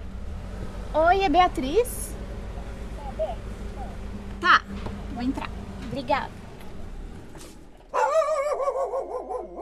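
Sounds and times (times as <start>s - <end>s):
low rumble: 0.0s - 9.5s
speech: 1.0s - 2.0s, 4.4s - 6.4s
dog barking: 7.9s - 9.5s.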